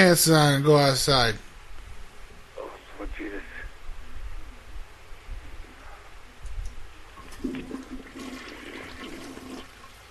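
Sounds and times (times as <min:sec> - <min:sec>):
speech: 0:00.0 - 0:01.5
toilet flushing: 0:07.2 - 0:09.9.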